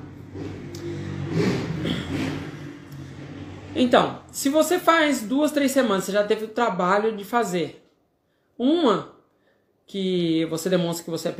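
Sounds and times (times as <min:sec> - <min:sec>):
motorcycle engine passing outside: 0:00.0 - 0:05.3
speech: 0:03.8 - 0:07.8, 0:08.6 - 0:09.1, 0:09.9 - 0:11.3.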